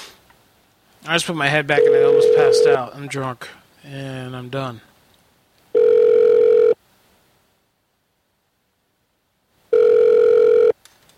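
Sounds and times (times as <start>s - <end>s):
speech: 1.0s - 4.9s
telephone ringback tone on an outgoing call: 1.8s - 2.8s, 5.8s - 6.8s, 9.7s - 10.8s.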